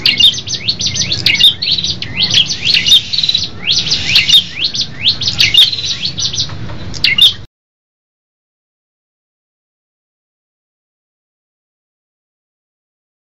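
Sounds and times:
group of tailorbirds singing high twitters: 0.0s - 7.5s
steady low hum: 0.0s - 7.5s.

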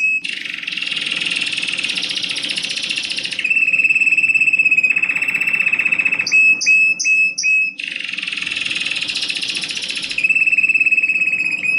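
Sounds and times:
American Singer and Timbrado canary song trill: 0.0s - 11.7s.

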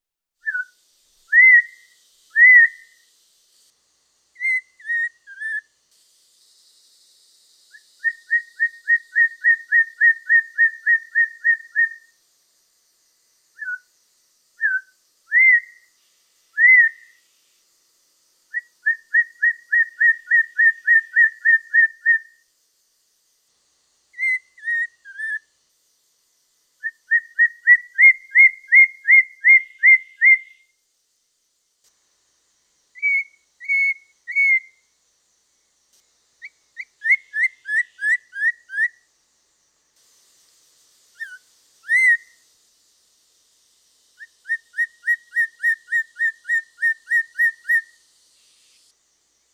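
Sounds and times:
poksay mandarin variation singing: 0.4s - 3.0s, 4.4s - 5.7s, 7.7s - 12.1s, 13.5s - 13.9s, 14.6s - 16.0s, 16.6s - 17.2s, 18.5s - 22.4s, 24.2s - 25.5s, 26.8s - 30.8s, 33.0s - 34.9s, 36.4s - 39.0s, 41.2s - 42.4s, 44.2s - 48.0s.

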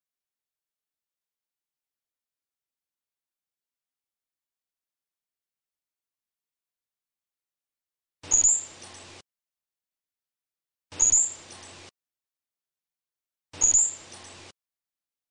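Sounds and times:
squirrel calling with piercing high squeaks: 8.3s - 8.8s, 11.0s - 11.6s, 13.6s - 14.5s.

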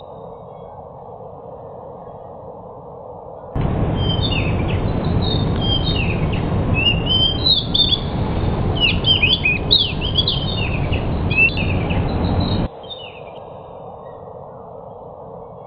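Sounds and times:
steady background noise: 0.0s - 15.6s
pied bush chat singing: 3.6s - 12.7s.

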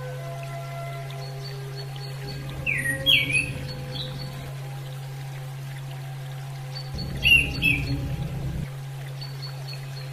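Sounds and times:
pouring water: 0.2s - 10.1s
female orange-headed thrush chirping: 2.1s - 4.8s, 6.9s - 8.8s
steady hum: 2.1s - 9.2s.

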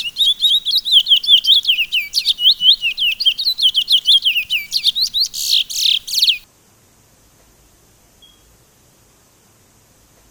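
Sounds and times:
Sunda laughingthrush singing: 0.0s - 6.4s.

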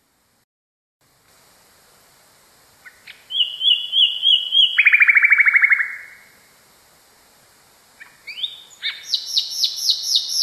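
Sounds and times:
Common nightingale song: 2.7s - 6.5s, 7.8s - 10.4s.

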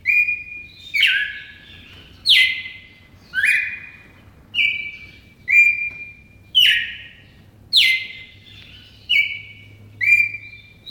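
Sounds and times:
red-crested cardinal whistling song: 0.0s - 1.6s, 3.4s - 4.0s, 4.6s - 7.2s, 9.1s - 10.8s.

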